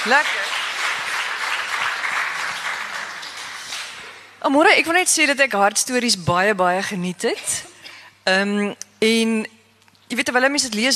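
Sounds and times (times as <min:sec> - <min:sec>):
speech: 0:00.0 - 0:00.6, 0:04.4 - 0:10.9
audience clapping: 0:00.0 - 0:04.3.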